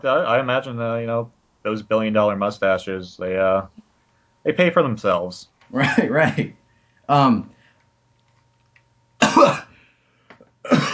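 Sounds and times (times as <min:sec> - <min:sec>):
speech: 0:00.0 - 0:03.8, 0:04.4 - 0:07.6, 0:09.4 - 0:09.6
laughter: 0:05.8 - 0:06.6
person coughing harshly: 0:09.2 - 0:09.8, 0:10.6 - 0:10.9.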